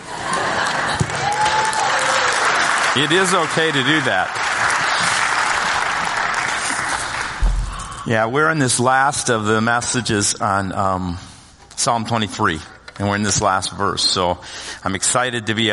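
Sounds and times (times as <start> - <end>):
roomful of people clapping: 0.2 - 8.1
speech: 3.0 - 4.5, 8.1 - 15.7.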